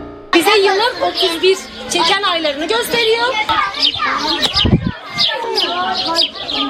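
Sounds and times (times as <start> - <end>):
birds chirping in a village school yard: 0.3 - 6.6
speech: 1.1 - 6.6.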